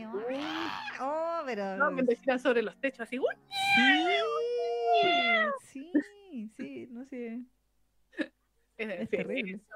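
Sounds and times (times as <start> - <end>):
cat yowling: 0.1 - 1.1, 3.5 - 5.6
speech: 1.0 - 4.4, 5.0 - 9.7.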